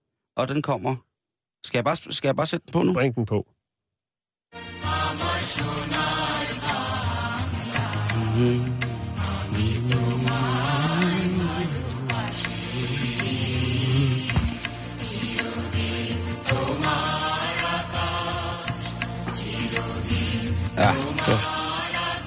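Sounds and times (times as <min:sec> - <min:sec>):
speech: 0:00.4 - 0:03.5, 0:08.4 - 0:08.9
national anthem as full instrumental arrangement with percussion hits: 0:04.6 - 0:22.2.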